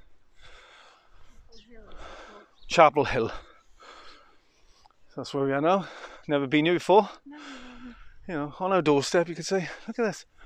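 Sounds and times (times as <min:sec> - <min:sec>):
heavy labored breathing from walking up a steep hill: 0:00.3 - 0:02.6, 0:03.4 - 0:05.0, 0:05.8 - 0:06.3, 0:07.2 - 0:08.3, 0:09.7 - 0:10.4
speech: 0:02.7 - 0:03.5, 0:05.2 - 0:07.6, 0:08.3 - 0:10.4.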